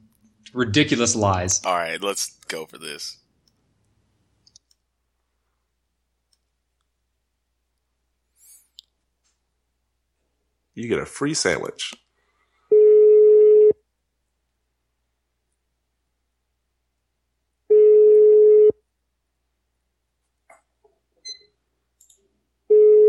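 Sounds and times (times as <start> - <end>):
speech: 0.5 - 3.2, 10.8 - 12.0
electronic phone ringback tone calling a sandwich and lunch bar: 12.7 - 13.8, 17.7 - 18.7, 22.7 - 23.0.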